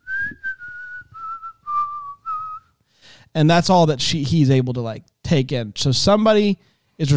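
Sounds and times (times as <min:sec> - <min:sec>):
person whistling a short tune: 0:00.0 - 0:02.8
speech: 0:03.4 - 0:07.1.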